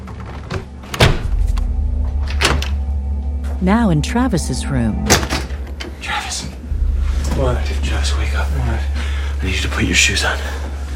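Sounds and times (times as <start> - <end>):
glass-paned door being pushed shut: 0.9 - 1.6
steady low hum: 1.2 - 10.9
speech: 3.6 - 5.4, 7.4 - 10.7.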